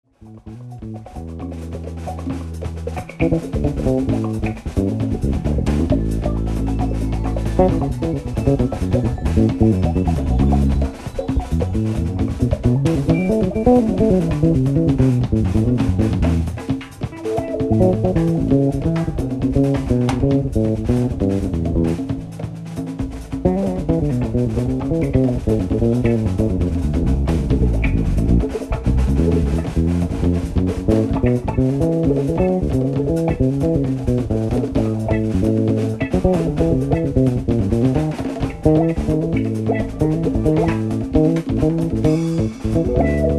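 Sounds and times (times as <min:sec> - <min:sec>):
solo bass: 0:00.0 - 0:16.8, 0:17.5 - 0:43.3.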